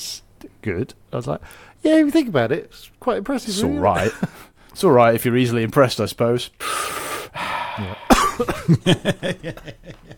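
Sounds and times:
speech: 0.6 - 7.0, 7.8 - 10.1
laughter: 3.8 - 4.4, 8.6 - 10.1
person coughing fit: 8.0 - 8.8.

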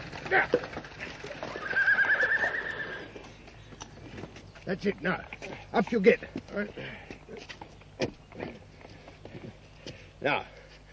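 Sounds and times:
horse hoofbeats clopping: 0.0 - 10.1
speech: 0.3 - 0.8, 4.7 - 7.4, 10.2 - 10.6
horse whinnying loudly and shrilly: 1.4 - 3.2.

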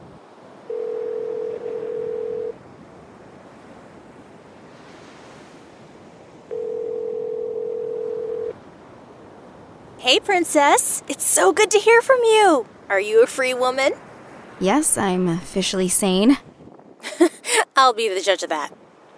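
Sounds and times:
outgoing phone call ringing tone: 0.7 - 2.6, 6.5 - 8.6
speech: 10.0 - 14.0, 14.6 - 16.5, 17.8 - 18.8.

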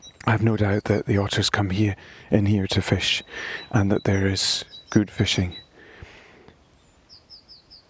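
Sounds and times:
thin high warble of wild birds in woodland by a loch: 0.0 - 7.8
speech: 0.3 - 5.6.

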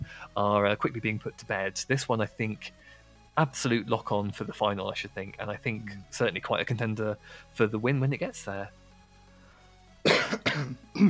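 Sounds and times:
speech: 0.2 - 8.8, 10.3 - 11.0
harsh raspy throat-clearing coughs: 10.0 - 11.0.

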